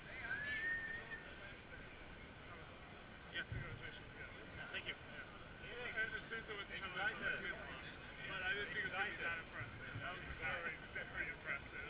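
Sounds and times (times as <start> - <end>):
whistle blowing: 0.2 - 1.4
speech: 3.4 - 11.8.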